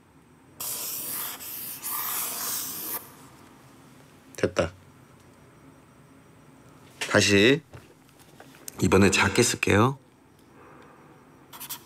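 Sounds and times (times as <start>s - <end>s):
felt-tip marker writing on paper: 0.6s - 3.0s, 11.6s - 11.8s
speech: 4.4s - 4.8s, 7.2s - 7.7s, 8.8s - 10.0s.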